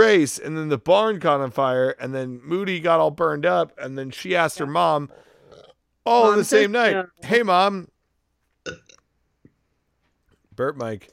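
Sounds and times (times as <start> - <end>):
speech: 0.0 - 5.3, 6.0 - 7.9, 10.6 - 11.1
drawn-out burp into the microphone: 5.4 - 5.9, 8.6 - 9.0.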